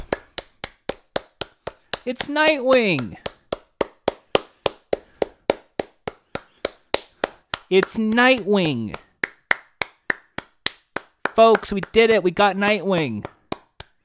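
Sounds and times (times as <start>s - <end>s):
steady evenly paced hand clapping: 0.0s - 14.0s
speech: 2.0s - 3.2s, 7.7s - 9.0s, 11.4s - 13.3s.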